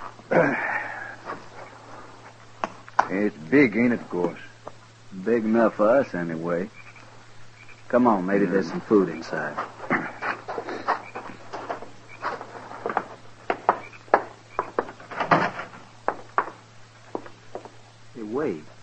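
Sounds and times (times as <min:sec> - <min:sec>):
speech: 0:00.4 - 0:00.7, 0:03.1 - 0:04.5, 0:05.1 - 0:06.8, 0:07.9 - 0:09.8
horse hooves knocking on wood in a barn: 0:09.5 - 0:17.8.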